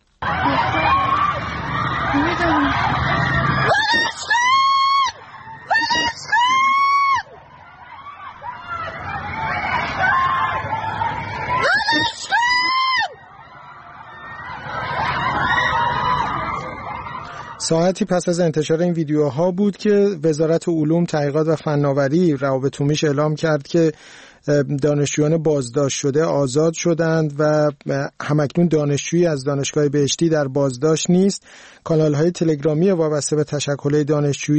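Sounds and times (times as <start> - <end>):
loud drawn-out yells: 0.2 - 17.7
crowd of students shouting in protest from a dormitory: 0.2 - 17.8
speech: 17.7 - 34.5.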